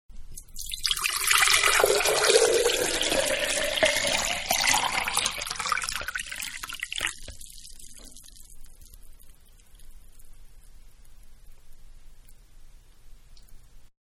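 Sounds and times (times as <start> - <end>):
water pouring into a medium pitcher: 0.4 - 9.2.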